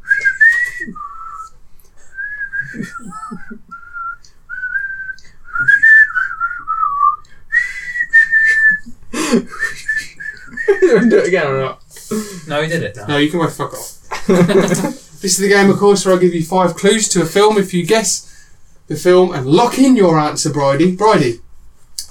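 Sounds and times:
person whistling a melodic tune: 0.0s - 11.2s
laughter: 2.6s - 3.8s, 8.5s - 12.5s, 14.1s - 15.1s
speech: 10.9s - 18.2s, 18.9s - 21.4s.

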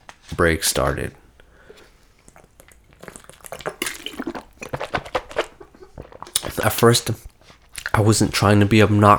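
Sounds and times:
speech: 0.3s - 1.2s, 6.7s - 7.3s, 8.0s - 9.1s
sparkling water swished around in someone's mouth: 1.2s - 8.1s.

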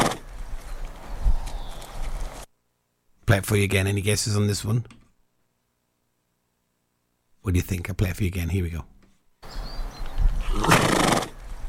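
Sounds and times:
horse neighing: 0.0s - 0.2s, 10.4s - 11.4s
speech: 3.3s - 5.0s, 7.5s - 8.9s.

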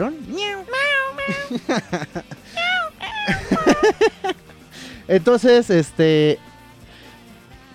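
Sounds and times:
several kittens meowing: 0.4s - 1.8s, 2.5s - 4.3s
laughter: 1.2s - 4.6s
speech: 1.3s - 2.3s, 5.1s - 6.5s.

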